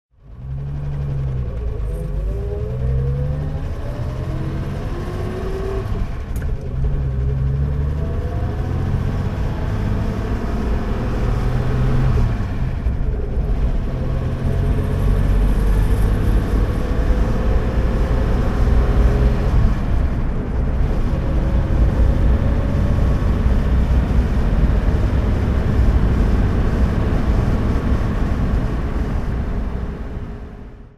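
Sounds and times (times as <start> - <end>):
Jaguar Mk V saloon engine driving: 0.1 - 30.9.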